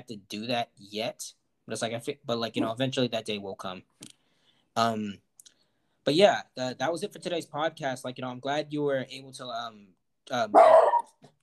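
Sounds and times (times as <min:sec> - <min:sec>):
speech: 0:00.0 - 0:04.1, 0:04.8 - 0:05.2, 0:06.0 - 0:11.4
dog barking: 0:10.6 - 0:11.1
dog yipping: 0:10.6 - 0:11.2.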